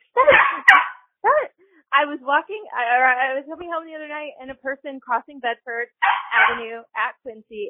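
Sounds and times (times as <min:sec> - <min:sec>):
dog barking: 0:00.2 - 0:01.0, 0:06.0 - 0:06.7
speech: 0:02.0 - 0:07.6.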